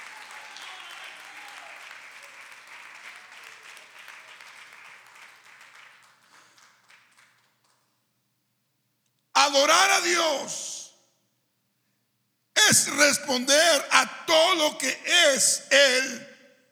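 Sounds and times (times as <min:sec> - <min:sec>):
church audience applauding: 0:00.0 - 0:07.9
speech: 0:09.5 - 0:10.7, 0:12.8 - 0:16.3.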